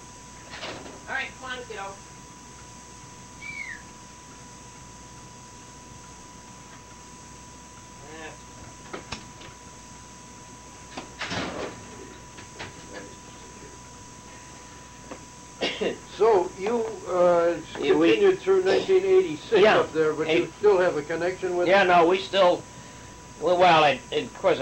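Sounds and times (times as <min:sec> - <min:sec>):
steady hum: 0:00.0 - 0:24.6
speech: 0:01.5 - 0:02.1, 0:18.1 - 0:22.7, 0:23.4 - 0:24.6
door opening and shutting: 0:10.9 - 0:12.8.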